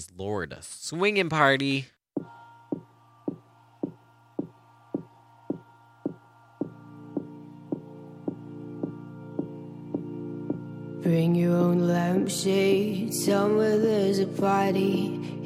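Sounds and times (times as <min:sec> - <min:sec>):
speech: 0:00.0 - 0:02.3, 0:11.1 - 0:15.4
heartbeat-like thudding beat of a dark pop song intro: 0:02.2 - 0:10.7.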